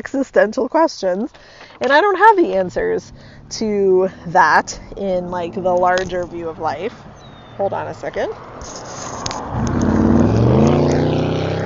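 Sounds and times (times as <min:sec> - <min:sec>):
speech: 0:00.0 - 0:08.8
loud car engine roaring past: 0:02.6 - 0:11.6.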